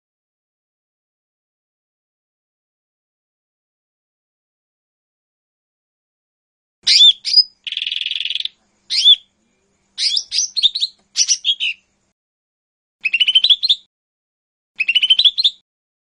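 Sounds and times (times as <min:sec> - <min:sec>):
leafbird singing high chirping phrases with whistles and trills: 0:06.9 - 0:11.9, 0:13.0 - 0:13.9, 0:14.8 - 0:15.6.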